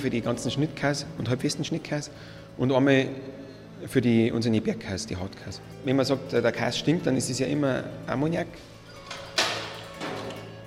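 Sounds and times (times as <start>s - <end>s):
speech: 0.0s - 8.8s
cellar door opening: 8.9s - 10.6s.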